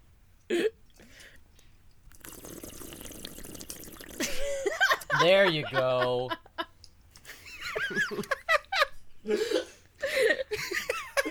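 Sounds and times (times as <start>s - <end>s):
wet sloshing water: 2.1s - 4.4s
person gulping a drink of water: 2.1s - 4.5s
laughter: 4.2s - 11.3s
speech: 5.2s - 6.4s, 9.3s - 9.6s.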